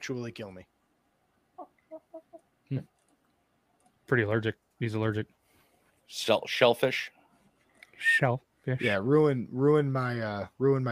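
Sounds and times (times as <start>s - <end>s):
speech: 0.0s - 0.8s, 2.7s - 3.0s, 4.1s - 5.4s, 6.1s - 7.2s, 8.0s - 10.9s
chicken clucking while eating shrimp: 1.6s - 2.5s.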